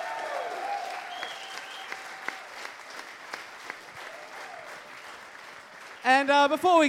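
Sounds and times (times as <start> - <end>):
cheers: 0.0 - 2.8, 3.8 - 5.4
festival audience applause: 0.0 - 6.8
faint whistles: 1.0 - 2.0
speech: 6.0 - 6.8.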